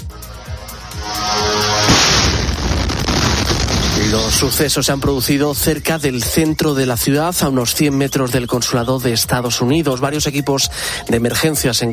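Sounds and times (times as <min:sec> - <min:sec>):
loud explosion in a city: 0:00.9 - 0:05.7
speech: 0:04.1 - 0:11.9.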